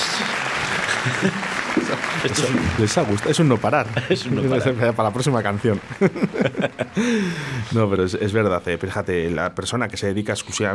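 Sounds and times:
applause from a group of people: 0.0s - 7.6s
faint murmur of voices: 0.0s - 7.8s
laughter: 0.2s - 7.8s
speech: 1.0s - 10.7s.

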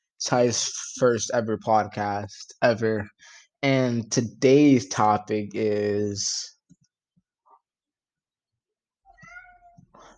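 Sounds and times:
speech: 0.2s - 6.5s
pet cat meowing: 9.1s - 9.9s.

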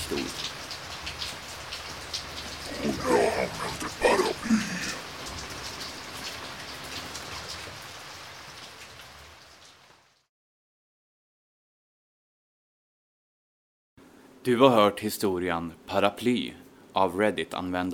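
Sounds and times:
heavy rain pouring down: 0.0s - 10.3s
voice murmuring: 2.7s - 5.0s
speech: 14.5s - 17.9s.

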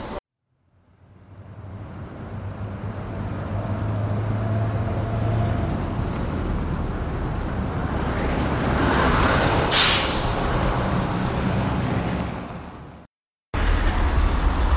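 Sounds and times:
heavy train rumbling: 1.3s - 13.0s, 13.6s - 14.7s
train air brakes hissing: 9.6s - 11.4s.

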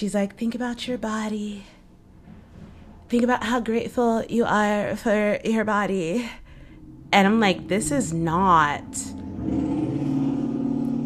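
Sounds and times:
speech: 0.0s - 1.8s, 3.1s - 6.4s, 7.1s - 9.8s
loud car engine revving outside an apartment: 5.9s - 11.0s.

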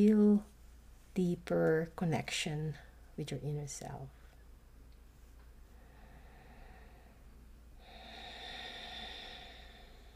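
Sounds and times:
speech: 0.0s - 0.5s, 1.2s - 4.2s
slow deep breath during a meditation breathing exercise: 5.6s - 10.1s.

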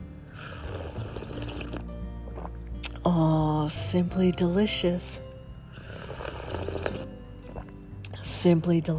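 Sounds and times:
coffee pouring on a farm: 0.3s - 2.6s, 5.8s - 7.7s
speech: 3.1s - 5.2s, 8.4s - 8.9s.

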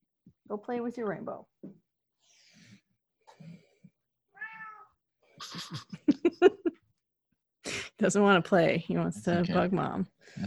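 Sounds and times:
speech: 0.5s - 1.8s, 5.4s - 6.8s, 8.0s - 10.4s
cat meowing and chirping: 4.4s - 4.9s
laughter: 5.4s - 6.8s, 9.2s - 10.4s.

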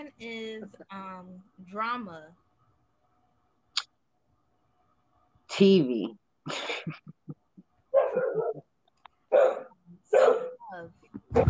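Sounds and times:
speech: 0.0s - 2.5s, 5.5s - 7.3s, 9.3s - 11.4s
dogs barking: 7.9s - 8.7s, 9.3s - 10.6s.

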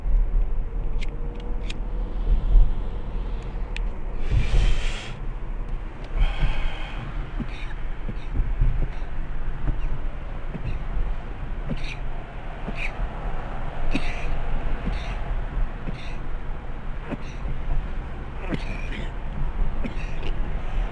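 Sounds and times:
steady low engine-like rumble: 0.0s - 20.9s
person inhaling smoke: 4.2s - 5.2s, 6.1s - 7.7s.

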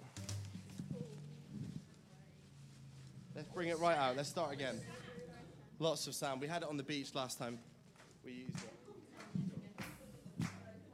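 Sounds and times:
faint shuffling: 0.0s - 10.9s
speech: 3.4s - 5.1s, 5.8s - 8.8s
sharp hand claps: 8.0s - 10.7s.

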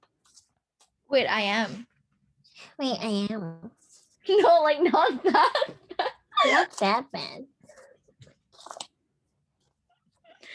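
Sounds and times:
paper rustling and crinkling in a folder: 0.1s - 1.0s
speech: 1.1s - 1.9s, 2.6s - 5.8s, 6.4s - 7.5s
laughter: 4.8s - 6.6s.

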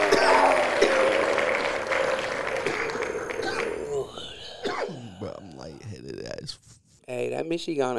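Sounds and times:
voice imitating a cheering crowd: 0.0s - 4.4s
speech: 7.5s - 7.9s.

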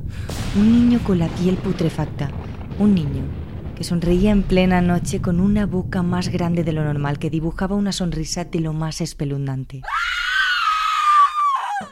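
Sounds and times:
speech: 0.5s - 10.0s
girl screaming in terror: 9.8s - 11.9s.

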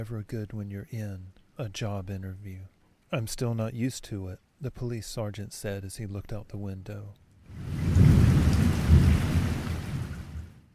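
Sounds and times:
speech: 0.0s - 8.1s
steady falling rain: 7.4s - 10.6s
heavy thunder rumbling during rainstorm: 7.5s - 10.6s.

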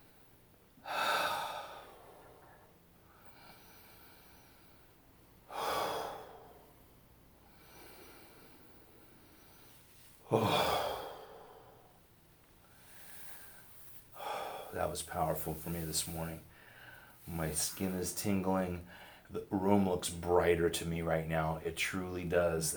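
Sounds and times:
group taking deep breaths together: 0.8s - 6.8s, 7.4s - 12.0s, 12.6s - 14.7s, 16.5s - 17.2s
speech: 10.3s - 10.7s, 14.8s - 16.5s, 17.3s - 22.7s.

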